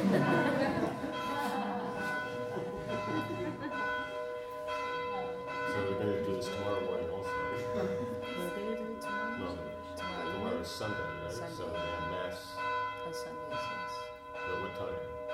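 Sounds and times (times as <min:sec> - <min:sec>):
laughter: 0:00.0 - 0:04.2, 0:07.5 - 0:08.4
church bells ringing: 0:00.0 - 0:15.3.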